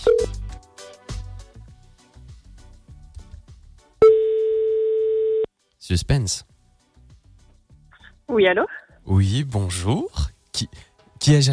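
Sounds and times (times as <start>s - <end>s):
speech: 0.2s - 0.4s, 5.9s - 6.5s, 8.4s - 11.5s
telephone ringback tone while placing a call: 4.0s - 5.5s.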